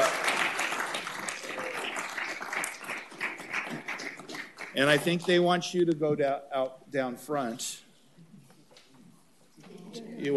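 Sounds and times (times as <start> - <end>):
applause from a room full of people: 0.0 - 5.0
speech: 4.8 - 7.8.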